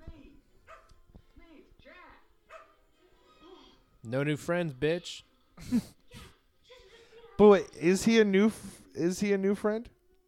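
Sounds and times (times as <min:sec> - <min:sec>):
dog barking: 0:00.7 - 0:01.0, 0:02.5 - 0:02.8
speech: 0:04.1 - 0:06.0, 0:07.4 - 0:10.0.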